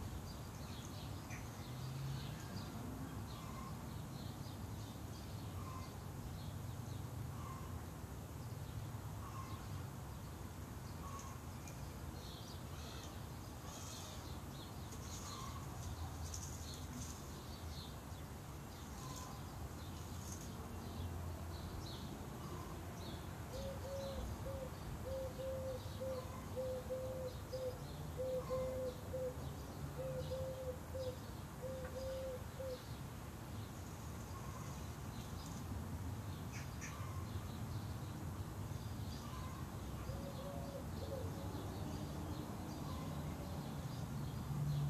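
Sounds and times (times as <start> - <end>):
low rumble of city traffic: 0.0 - 44.8
birds cooing in a city garden: 23.5 - 32.8, 39.3 - 41.4.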